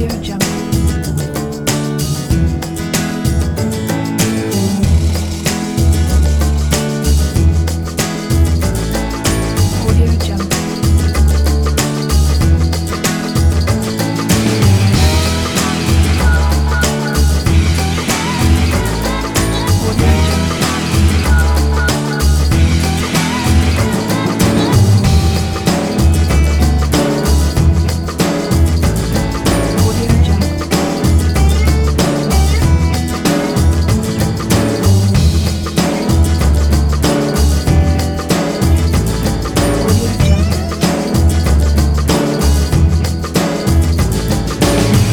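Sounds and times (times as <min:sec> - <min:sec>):
cool TV show theme music: 0:00.1 - 0:45.1.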